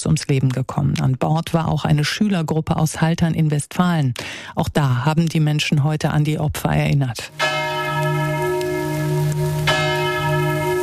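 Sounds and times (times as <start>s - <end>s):
speech: 0.0s - 8.1s
church bells in Haltern am See Westphalia ringing in remembrance: 7.3s - 10.8s.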